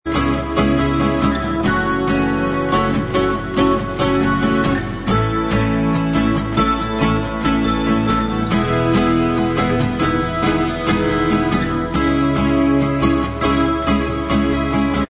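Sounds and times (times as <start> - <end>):
acoustic instrumental backing track: 0.0 - 15.0.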